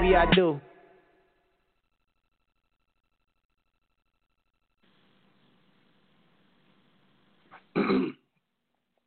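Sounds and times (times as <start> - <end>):
speech: 0.1 - 0.7
rough throat clearing: 7.5 - 8.3.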